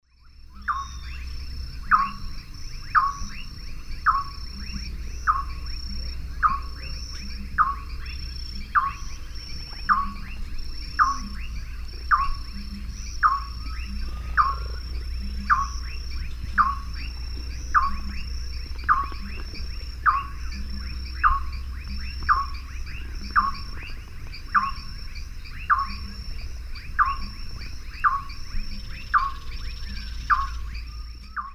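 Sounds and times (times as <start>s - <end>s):
Nyctiprogne leucopyga song in eastern lowlands of South America: 0.0s - 31.5s.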